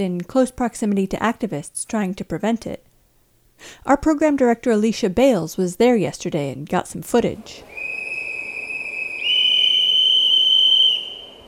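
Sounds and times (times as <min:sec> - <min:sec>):
speech: 0:00.0 - 0:02.9, 0:03.6 - 0:07.8
faint hiss of noise: 0:00.0 - 0:11.4
shrill whistle blown by activists in a logging forest: 0:07.7 - 0:11.4.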